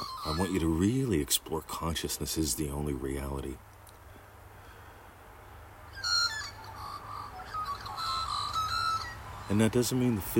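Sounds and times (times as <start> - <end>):
pet bird squawking and chirping: 0.0 - 1.0, 5.9 - 10.3
speech: 0.2 - 3.7, 9.5 - 10.3.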